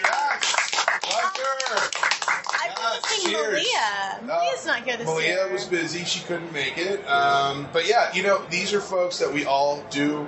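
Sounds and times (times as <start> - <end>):
audience applause: 0.0 - 3.5
speech: 3.0 - 10.2.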